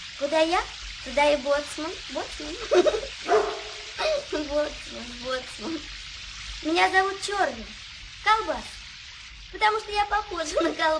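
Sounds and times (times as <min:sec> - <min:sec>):
speech: 0:00.2 - 0:03.4, 0:04.4 - 0:06.0, 0:06.6 - 0:08.8, 0:09.5 - 0:10.9
dog barking: 0:03.2 - 0:03.9.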